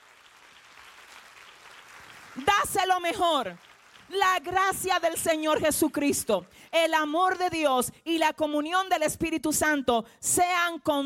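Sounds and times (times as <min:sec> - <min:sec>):
audience applause: 0:00.0 - 0:04.2
speech: 0:02.4 - 0:11.0.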